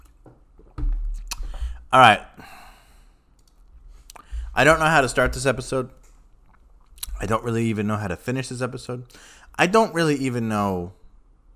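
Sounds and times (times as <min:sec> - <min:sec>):
speech: 0:01.9 - 0:02.3, 0:04.6 - 0:06.0, 0:07.2 - 0:11.0
wet water sloshing: 0:03.8 - 0:07.4
person drinking water, swallowing: 0:04.0 - 0:05.6.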